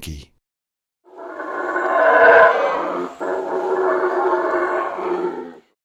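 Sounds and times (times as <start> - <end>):
howler monkey: 1.1 - 5.7.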